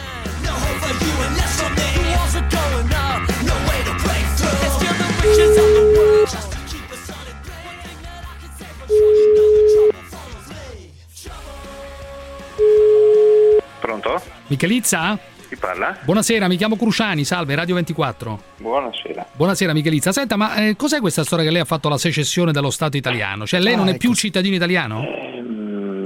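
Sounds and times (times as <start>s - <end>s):
busy music: 0.0s - 24.9s
ringback tone of an outgoing telephone call in Italy: 5.2s - 6.3s, 8.9s - 9.9s, 12.6s - 13.6s
speech: 14.5s - 25.4s.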